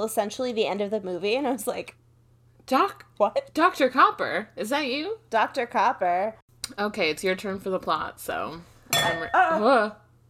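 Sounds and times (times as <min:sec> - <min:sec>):
speech: 0:00.0 - 0:02.0, 0:02.7 - 0:10.0
water glass clinking against a wine glass: 0:08.9 - 0:09.6.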